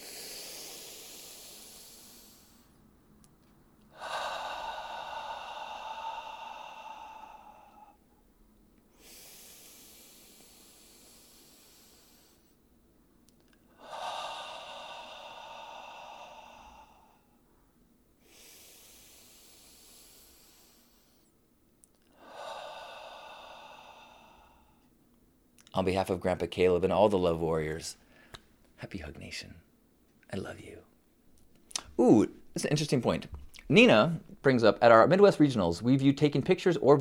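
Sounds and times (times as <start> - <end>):
deep breaths in through the nose and out through the mouth: 0.0 - 25.0, 28.0 - 28.6
speech: 25.7 - 28.0, 28.8 - 29.7, 30.3 - 30.9, 32.0 - 36.9.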